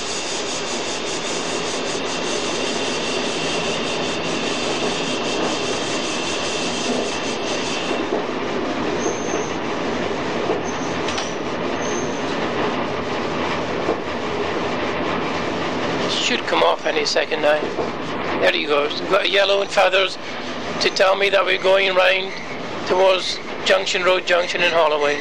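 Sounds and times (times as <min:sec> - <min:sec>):
train brake squeals while braking for a signal: 0:00.0 - 0:08.0, 0:09.0 - 0:09.6, 0:10.6 - 0:12.3, 0:21.6 - 0:22.7, 0:24.9 - 0:25.1
train rumble and wheel rattle: 0:00.0 - 0:25.1
speech: 0:17.0 - 0:25.1.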